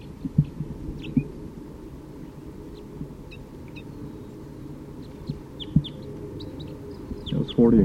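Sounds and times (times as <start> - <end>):
male bird chittering flying toward a bird-catching net: 0.0 - 1.3, 2.7 - 7.7
constant low rumble: 0.0 - 7.8
speech: 7.6 - 7.8.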